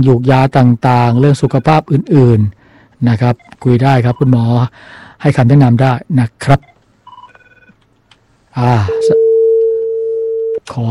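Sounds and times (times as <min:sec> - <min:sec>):
speech: 0:00.0 - 0:06.7, 0:08.6 - 0:09.2, 0:10.7 - 0:10.8
steady telephone tone after a caller's line dropped: 0:06.6 - 0:07.8, 0:08.8 - 0:10.6.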